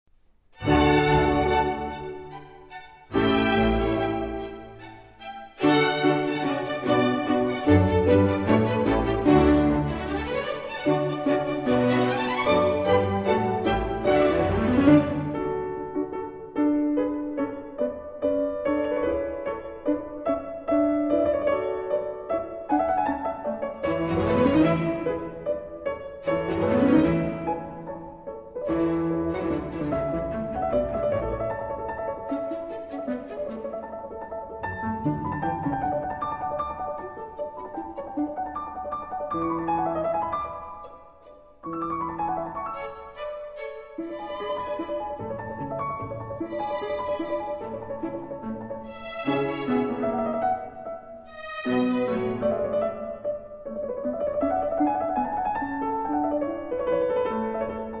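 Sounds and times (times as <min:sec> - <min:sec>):
piano concert allegretto: 0:00.1 - 0:57.9.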